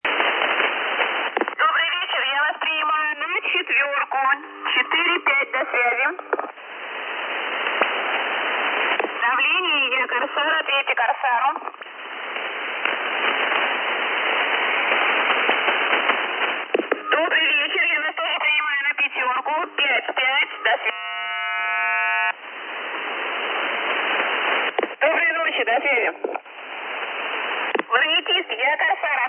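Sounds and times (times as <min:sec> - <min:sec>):
shortwave radio signal on 11360 kHz: 0:00.0 - 0:29.2.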